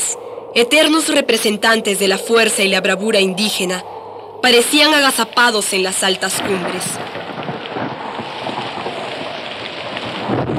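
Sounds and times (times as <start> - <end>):
low rumble of thunder: 0.0 - 10.5
speech: 0.5 - 7.2
steady heavy rain downpour: 3.7 - 10.5.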